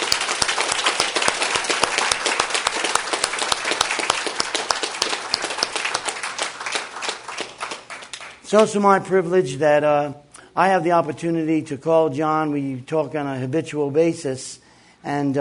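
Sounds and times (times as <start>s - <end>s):
audience applause: 0.0s - 8.4s
speech: 8.5s - 15.3s.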